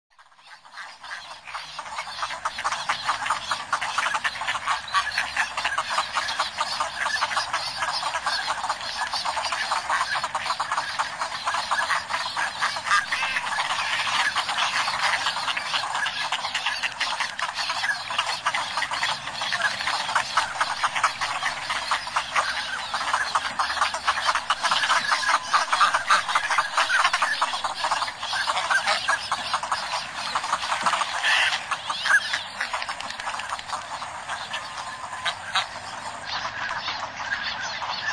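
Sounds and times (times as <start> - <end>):
Anas acuta at sea off Sakhalin and the Kurils: 0.2 - 38.1.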